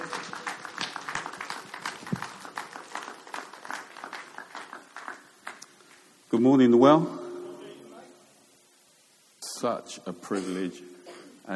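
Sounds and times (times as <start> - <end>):
crowd applauding a speaker: 0.0 - 6.1
speech: 6.3 - 7.2, 9.6 - 10.9.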